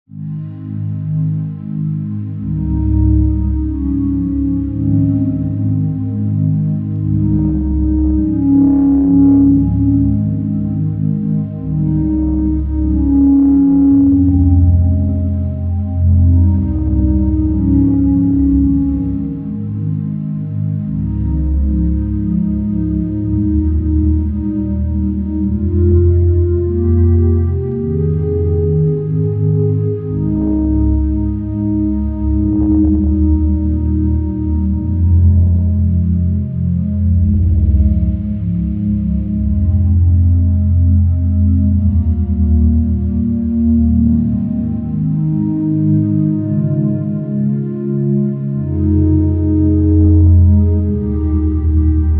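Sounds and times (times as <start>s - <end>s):
underscore pad: 0.1s - 52.1s.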